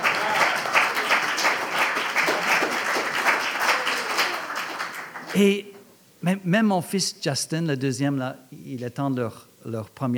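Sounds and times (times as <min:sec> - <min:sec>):
crowd applauding: 0:00.0 - 0:05.5
speech: 0:05.4 - 0:10.1.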